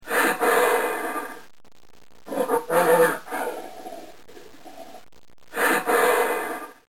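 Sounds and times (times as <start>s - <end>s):
gorilla: 0.1s - 1.4s, 2.3s - 4.9s, 5.5s - 6.9s.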